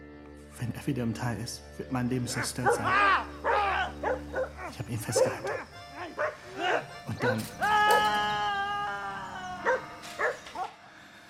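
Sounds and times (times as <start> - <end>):
speech: 0.6 - 3.4, 4.1 - 5.7, 7.2 - 8.2
dog whimpering yelps: 2.6 - 8.2, 9.5 - 10.7
dog howling: 2.6 - 10.8.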